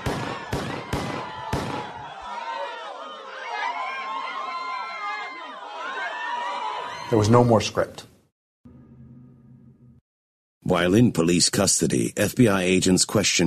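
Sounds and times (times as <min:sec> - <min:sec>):
gunshots in an assassination attempt: 0:00.0 - 0:02.1
agitated crowd voices and shouting: 0:00.0 - 0:07.5
speech: 0:07.1 - 0:08.1, 0:10.7 - 0:13.4.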